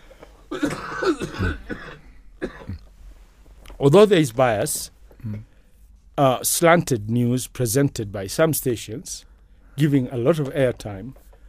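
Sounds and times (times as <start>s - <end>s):
person coughing: 0.5s - 2.9s
speech: 3.8s - 5.5s, 6.2s - 11.2s.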